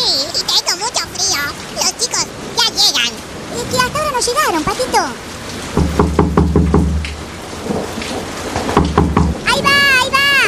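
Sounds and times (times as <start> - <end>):
heavy rain hissing: 0.0 - 10.4
deep rolling rumble of thunder: 3.2 - 10.4
speech: 3.8 - 5.3.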